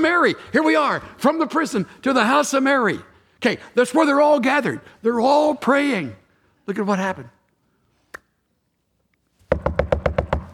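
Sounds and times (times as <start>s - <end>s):
speech: 0.1s - 7.4s
knocking on a door: 9.5s - 10.5s.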